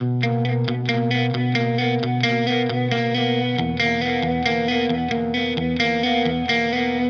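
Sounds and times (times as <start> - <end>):
pop rock electric guitar lick in E major at 135 bpm: 0.0 - 7.0.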